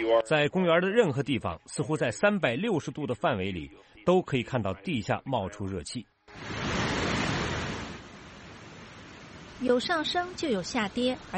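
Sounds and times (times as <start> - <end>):
speech: 0.1 - 6.7, 9.6 - 11.3
dense roar of rushing water: 6.3 - 11.3.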